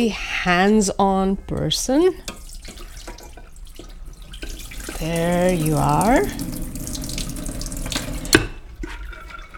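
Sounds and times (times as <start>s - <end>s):
speech: 0.0s - 2.4s, 5.0s - 6.6s
water pouring into a pot: 2.3s - 9.5s.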